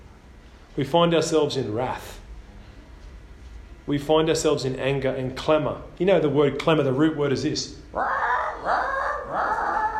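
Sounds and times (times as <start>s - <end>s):
speech: 0.8s - 2.2s, 3.9s - 8.8s
voice imitating a crow croak: 7.9s - 9.9s.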